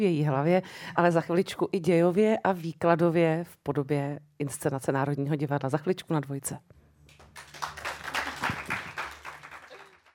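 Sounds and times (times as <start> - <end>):
speech: 0.0 - 6.8
small live audience clapping in a café: 7.1 - 10.1.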